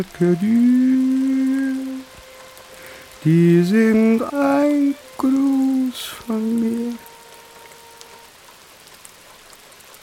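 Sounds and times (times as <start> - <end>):
speech: 0.0 - 1.1, 3.2 - 7.1
raindrops pattering against a barred prison cell window: 0.0 - 10.0.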